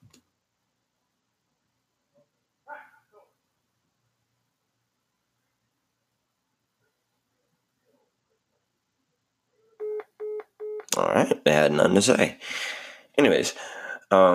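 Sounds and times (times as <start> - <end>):
phone ringing with an incoming call: 9.8 - 10.9
speech: 10.9 - 14.3.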